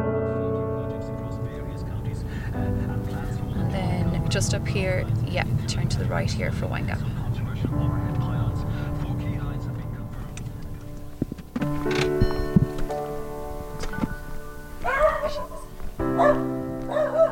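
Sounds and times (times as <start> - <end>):
low rumbling background: 0.2 - 14.8
speech: 4.3 - 8.4
dog whimpering: 14.8 - 16.4
dog barking and yipping excitedly in greeting: 14.8 - 17.3.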